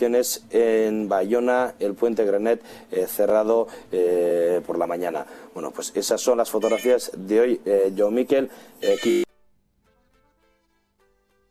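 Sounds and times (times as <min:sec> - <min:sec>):
speech: 0:00.0 - 0:09.2
landline telephone ringing in an electronic two-part trill: 0:06.6 - 0:07.1, 0:08.8 - 0:09.3.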